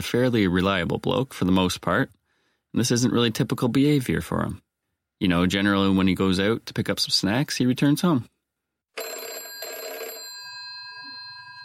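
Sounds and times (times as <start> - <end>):
speech: 0.0 - 4.6, 5.2 - 8.3
telephone bell ringing: 8.9 - 11.6.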